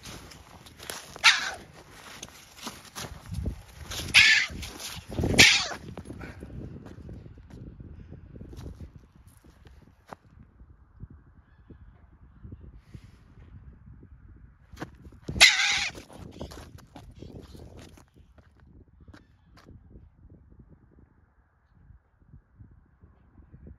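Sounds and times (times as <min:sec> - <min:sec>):
European pine marten: 0:00.3 - 0:05.9, 0:15.3 - 0:17.5.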